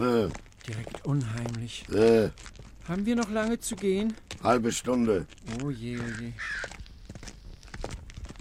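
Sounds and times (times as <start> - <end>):
speech: 0.0 - 6.8
crows cawing: 6.0 - 7.1.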